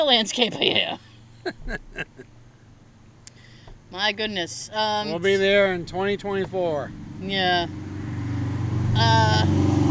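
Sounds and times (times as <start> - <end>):
speech: 0.0 - 2.1, 3.9 - 7.8
laughter: 0.5 - 2.3
motorcycle engine rumbling: 0.7 - 9.6.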